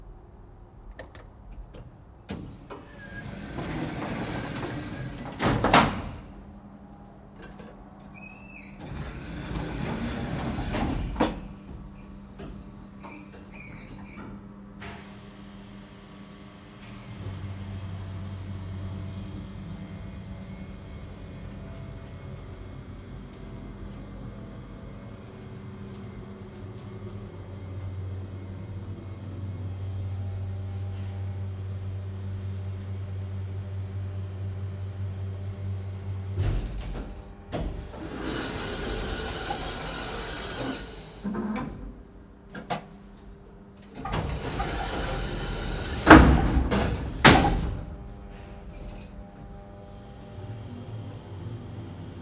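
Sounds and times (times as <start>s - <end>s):
hydraulic elevator ride: 0.9s - 52.2s.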